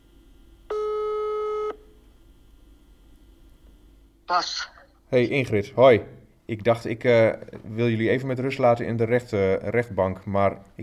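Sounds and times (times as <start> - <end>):
faint hiss: 0.0 - 10.8
telephone ringback tone while a call is placed: 0.7 - 1.8
speech: 4.3 - 10.8.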